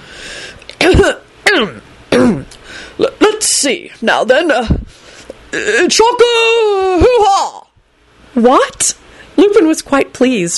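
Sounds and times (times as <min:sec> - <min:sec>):
speech: 0:01.0 - 0:01.8, 0:03.6 - 0:04.8, 0:05.5 - 0:07.6, 0:08.4 - 0:10.5
man clearing his throat: 0:02.1 - 0:02.5.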